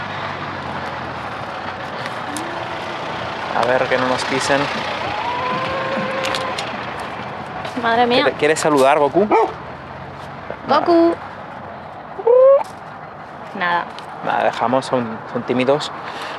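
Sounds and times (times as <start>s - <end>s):
car driving past: 0.0s - 12.1s
speech: 3.6s - 5.0s, 7.8s - 9.6s, 10.7s - 11.2s, 13.6s - 16.3s
dog barking: 9.2s - 9.6s.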